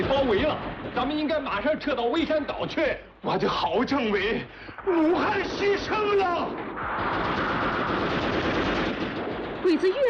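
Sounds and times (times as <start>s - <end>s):
machine-gun fire in a wartime battle: 0.0s - 1.8s, 4.9s - 10.0s
speech: 0.3s - 7.4s, 9.6s - 10.0s.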